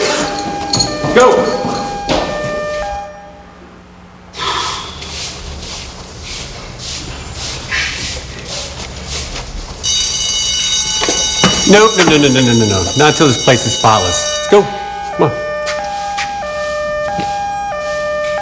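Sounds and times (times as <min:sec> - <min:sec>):
tonal alarm: 0:00.0 - 0:03.6, 0:09.8 - 0:18.3
speech: 0:01.2 - 0:01.7, 0:11.7 - 0:15.4
breathy bursts: 0:04.3 - 0:05.0.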